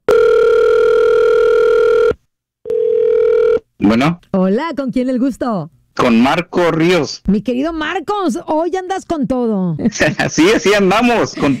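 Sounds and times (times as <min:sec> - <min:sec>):
telephone dial tone while dialing a call: 0:00.1 - 0:03.6
speech: 0:04.0 - 0:11.5.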